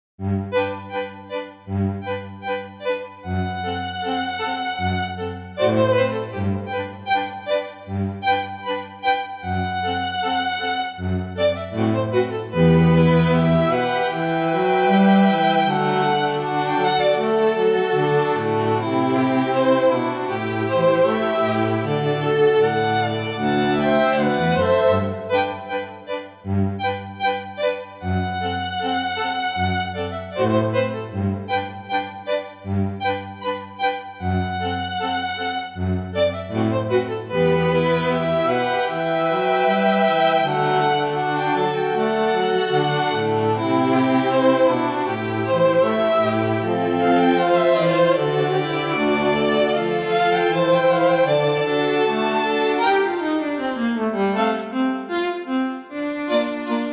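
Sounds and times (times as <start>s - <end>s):
string quartet playing: 0.2s - 56.9s.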